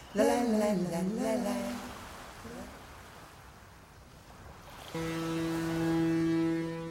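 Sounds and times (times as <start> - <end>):
ocean waves and surf: 0.0 - 6.8
big ship horn at sea: 4.8 - 6.8
wavering sliding tone: 5.0 - 6.8.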